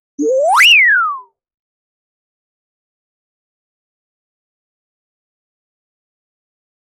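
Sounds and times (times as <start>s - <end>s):
quick video game jump sound: 0.2s - 1.2s.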